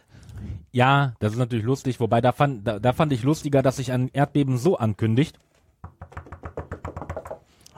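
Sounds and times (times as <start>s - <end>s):
speech: 0.7s - 6.2s
hollow knocks on a wooden table: 5.8s - 7.4s.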